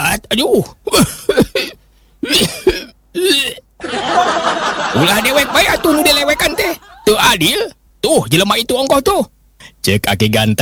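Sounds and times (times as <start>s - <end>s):
speech: 0.3s - 1.4s, 7.4s - 10.5s
person imitating an old man's coughing: 0.8s - 3.7s
laughter: 3.8s - 7.2s.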